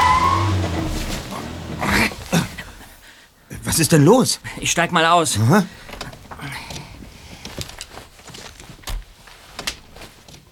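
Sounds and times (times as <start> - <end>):
car engine droning roughly and sputtering as it breaks down: 0.0 - 3.0
speech: 3.8 - 6.6.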